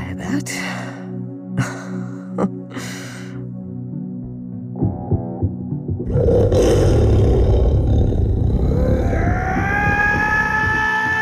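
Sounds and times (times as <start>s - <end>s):
speech: 0.2s - 0.9s, 2.4s - 2.6s
tiger roaring: 6.1s - 11.1s.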